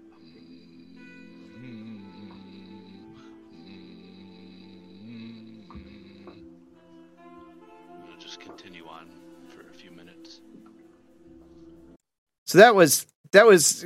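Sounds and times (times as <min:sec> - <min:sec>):
low steady human hum like a chant: 0:00.0 - 0:06.5
speech: 0:12.5 - 0:13.8.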